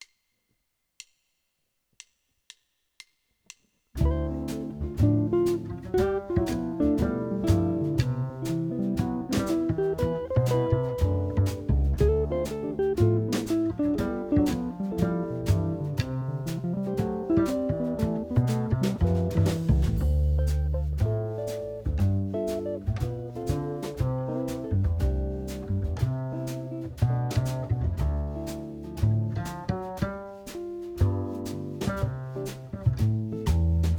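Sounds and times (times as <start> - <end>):
II V I backing track in C: 4.0 - 33.8.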